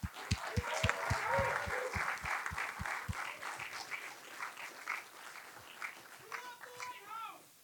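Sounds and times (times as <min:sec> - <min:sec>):
rhythmic thumps: 0:00.0 - 0:03.3
live event audience applause: 0:00.0 - 0:07.2
people cheering: 0:00.0 - 0:07.4
voices shouting: 0:00.2 - 0:03.5.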